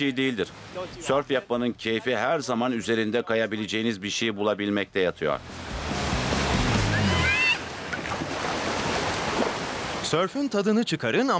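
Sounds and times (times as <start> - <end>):
speech: 0.0 - 5.7, 10.1 - 11.3
ocean waves about 1.5 metres high breaking on rocks: 5.5 - 10.2.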